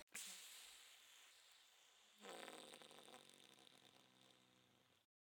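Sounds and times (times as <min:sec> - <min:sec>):
soft hissing silent fart released by clenching the anus: 0:00.2 - 0:05.0.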